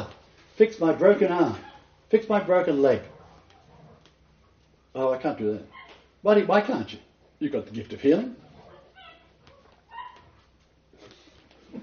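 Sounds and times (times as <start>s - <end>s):
speech: 0.6s - 3.1s, 5.0s - 8.4s
small puppy barking: 8.7s - 10.4s.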